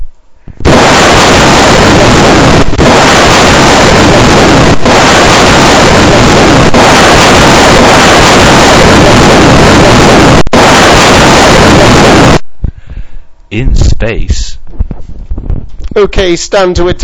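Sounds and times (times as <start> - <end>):
rocket blasting off at launch: 0.6 - 12.4
speech: 13.5 - 14.4, 16.0 - 17.0.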